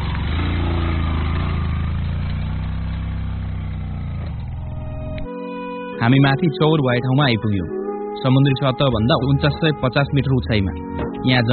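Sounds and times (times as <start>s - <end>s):
motorcycle engine straining up a steep high-altitude climb carrying two riders: 0.0s - 5.3s
speech: 6.0s - 11.5s.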